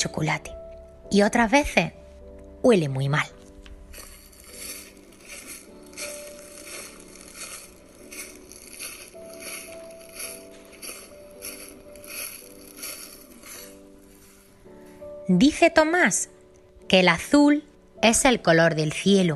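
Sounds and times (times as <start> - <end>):
speech: 0.0 - 2.0, 2.6 - 3.4, 15.3 - 19.3
soft sustained musical tone: 0.0 - 19.3
dry leaves crunching underfoot: 3.9 - 14.4.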